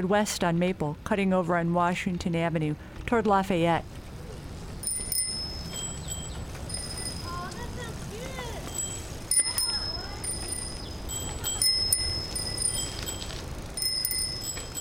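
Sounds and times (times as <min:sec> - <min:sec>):
speech: 0:00.0 - 0:04.0
steady outdoor road noise: 0:00.0 - 0:14.7
children ringing bicycle bells while riding: 0:04.8 - 0:14.7.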